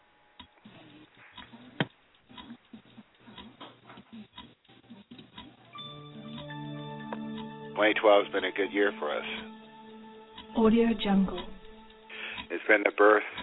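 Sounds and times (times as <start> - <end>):
clock ticking: 0.4 - 13.4
sustained ringing tone: 5.8 - 12.4
speech: 7.8 - 9.6, 10.6 - 11.6, 12.5 - 13.4.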